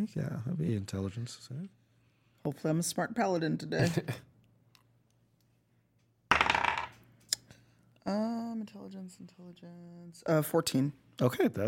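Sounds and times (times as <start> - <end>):
speech: 0.0 - 1.8, 2.4 - 4.3, 8.1 - 11.6
dice tumbling across a hard tabletop: 6.3 - 7.0.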